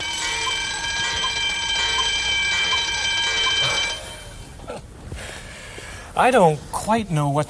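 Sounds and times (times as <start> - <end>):
loud continuous ringing alarm: 0.0 - 4.7
speech: 6.2 - 7.4.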